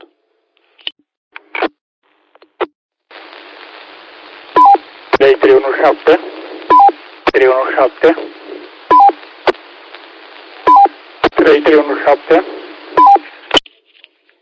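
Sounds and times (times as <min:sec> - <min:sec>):
tinny narrowband voices speaking over the radio: 0:03.2 - 0:13.5
two-note radio roger beeps: 0:04.6 - 0:09.6, 0:10.5 - 0:13.3
speech: 0:05.2 - 0:06.4, 0:07.4 - 0:08.4, 0:11.5 - 0:12.6.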